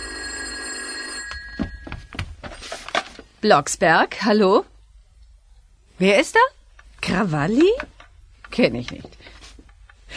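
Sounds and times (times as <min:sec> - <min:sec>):
telephone ringing with electronic trill: 0:00.0 - 0:02.2
speech: 0:03.4 - 0:04.7, 0:06.0 - 0:06.5, 0:07.1 - 0:07.9, 0:08.5 - 0:09.3.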